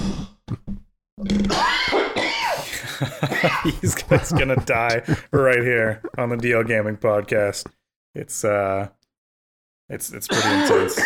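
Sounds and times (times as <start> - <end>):
speech: 1.2 - 1.8, 3.6 - 9.0, 9.9 - 11.0
person in a harsh coughing fit: 1.5 - 3.8, 10.3 - 11.0
laughter: 2.6 - 6.1.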